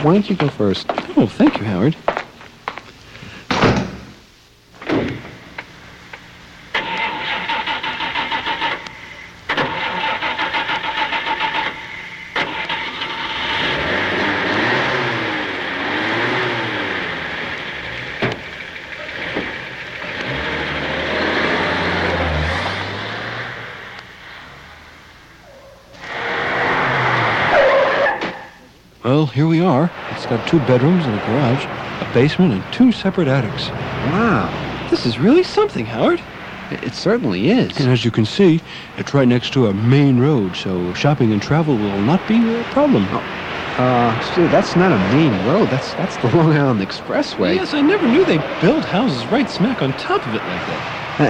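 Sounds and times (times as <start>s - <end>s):
speech: 0.0s - 2.1s, 29.4s - 51.2s
car engine cranking and starting: 4.7s - 51.2s.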